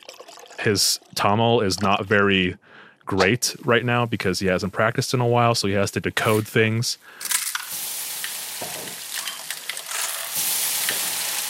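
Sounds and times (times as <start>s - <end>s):
speech: 0.6s - 7.3s
onions, ginger, garlic and tomatoes sizzling in a hot pan: 7.7s - 11.4s.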